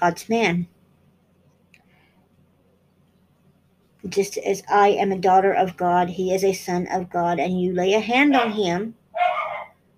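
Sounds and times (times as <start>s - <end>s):
speech: 0.0s - 0.8s, 4.0s - 9.0s
dog barking: 8.3s - 9.8s.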